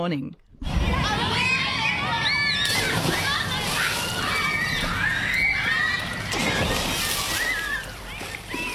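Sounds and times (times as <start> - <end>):
speech: 0.0 - 1.0
children shouting and chattering: 0.6 - 8.7
lively crowd ambience: 0.6 - 8.7
water splashing in outdoor swimming pool in Bairnsdale Gippsland Australia: 2.6 - 8.7.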